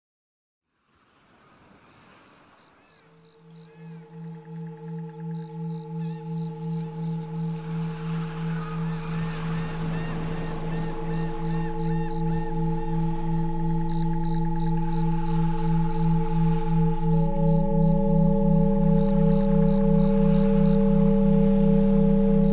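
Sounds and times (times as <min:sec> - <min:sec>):
singing bowls on a tropical island: 0:02.8 - 0:22.5.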